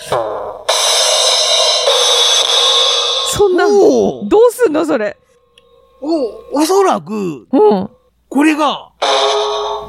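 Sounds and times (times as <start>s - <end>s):
electronic drum sound from toy instrument: 0.0s - 5.0s, 9.0s - 9.8s
speech: 3.4s - 5.2s, 6.0s - 9.4s.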